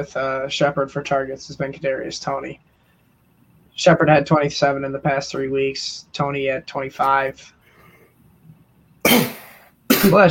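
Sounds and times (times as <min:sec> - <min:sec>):
speech: 0:00.0 - 0:02.7, 0:03.8 - 0:07.6, 0:09.0 - 0:09.3, 0:10.0 - 0:10.2
loud harsh cough: 0:09.0 - 0:10.2.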